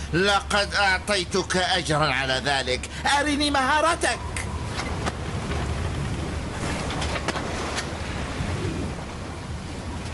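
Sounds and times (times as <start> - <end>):
heavy wind gusts: 0.0 - 10.1
speech: 0.1 - 4.3
stormy sea waves surging and crashing: 3.8 - 10.1.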